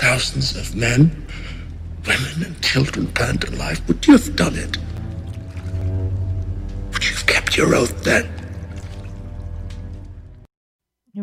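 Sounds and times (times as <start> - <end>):
low steady music bed: 0.0 - 10.5
speech: 0.2 - 5.0, 7.6 - 8.4
water sloshing and splashing in a bath: 3.2 - 10.3.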